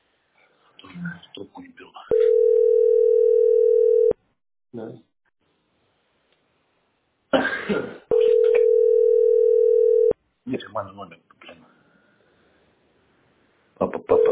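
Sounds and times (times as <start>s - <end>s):
speech: 1.0s - 1.9s
telephone ringback tone through a handset: 2.1s - 4.2s, 8.1s - 10.1s.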